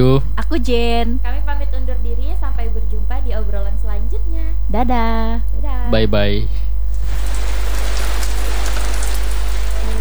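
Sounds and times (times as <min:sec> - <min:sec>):
speech: 0:00.0 - 0:06.6
low constant hum: 0:00.0 - 0:09.9
rain pouring: 0:06.9 - 0:09.9.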